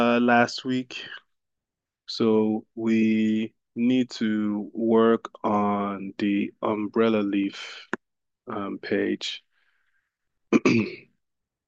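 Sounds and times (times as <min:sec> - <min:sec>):
speech: 0:00.2 - 0:01.2, 0:02.1 - 0:07.9, 0:08.5 - 0:09.4, 0:10.5 - 0:11.0
rough rasping throat clearing: 0:10.5 - 0:11.2
single sharp cough: 0:10.5 - 0:11.2.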